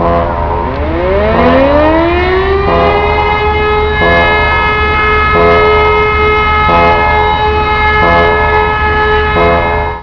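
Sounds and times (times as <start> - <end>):
siren: 0.0 - 10.0.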